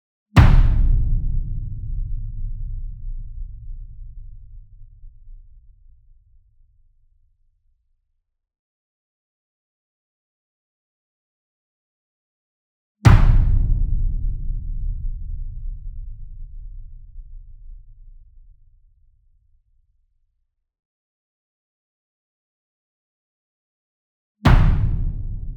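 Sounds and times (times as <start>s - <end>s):
single 66 inch drum hit hard with beater: 0.4s - 5.4s, 13.1s - 17.6s, 24.5s - 25.5s.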